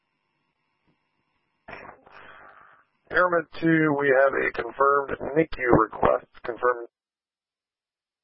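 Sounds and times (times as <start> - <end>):
radio static: 1.7 - 6.9
speech: 3.2 - 7.0.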